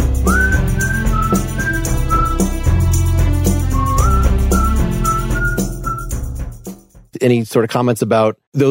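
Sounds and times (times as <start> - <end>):
full band playing: 0.0 - 6.2
double-tracked bright whistled melody: 0.1 - 2.8, 3.5 - 6.4
speech: 7.2 - 8.6.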